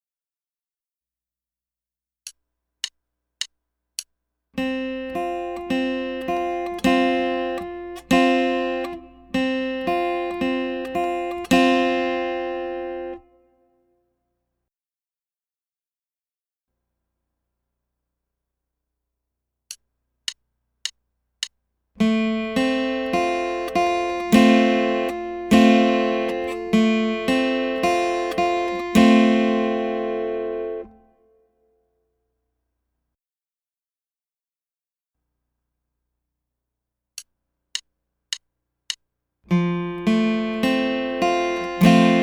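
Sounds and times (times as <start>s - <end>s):
F chord built from two three and four notes: 4.6s - 13.2s, 22.0s - 31.0s, 39.7s - 42.2s.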